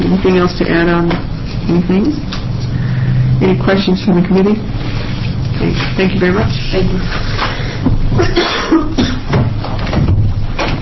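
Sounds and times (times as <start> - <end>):
low room hum: 0.0 - 10.8
speech: 0.1 - 2.4, 3.4 - 4.9, 5.6 - 7.4, 8.2 - 9.1
person coughing raspy coughs: 8.1 - 9.4.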